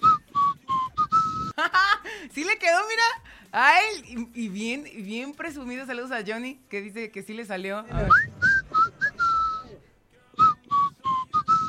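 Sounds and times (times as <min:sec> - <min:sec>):
person whistling a short melodic tune: 0:00.0 - 0:01.6, 0:08.0 - 0:09.8, 0:10.4 - 0:11.6
speech: 0:02.3 - 0:08.3.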